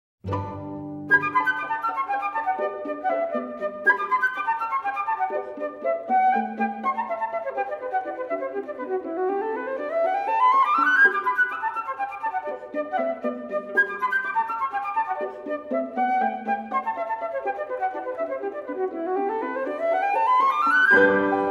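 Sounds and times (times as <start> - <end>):
strings: 0.2 - 21.4
flute: 0.3 - 21.4
piano: 0.3 - 21.4.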